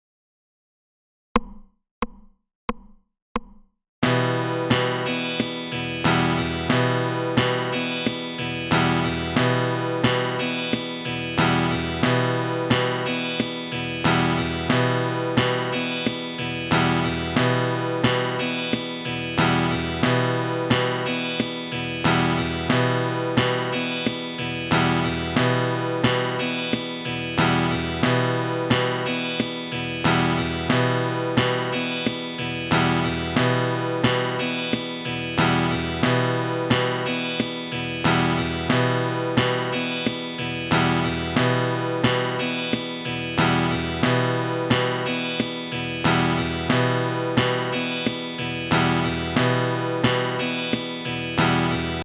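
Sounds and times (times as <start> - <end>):
thumb percussion: 1.4 - 52.0.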